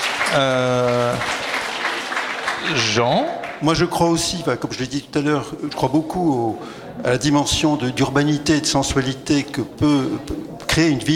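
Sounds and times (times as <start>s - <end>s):
audience applause at a public talk or debate: 0.0s - 3.7s
speech: 0.3s - 1.4s, 2.6s - 11.1s.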